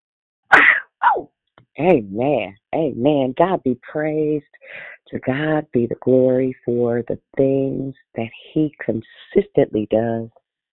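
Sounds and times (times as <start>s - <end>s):
loud two-burst sneeze: 0.5s - 1.2s
speech: 1.2s - 10.4s.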